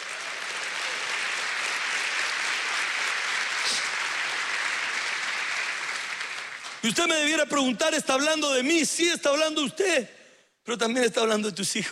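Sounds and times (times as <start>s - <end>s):
audience applauding: 0.0s - 6.9s
speech: 6.8s - 11.9s.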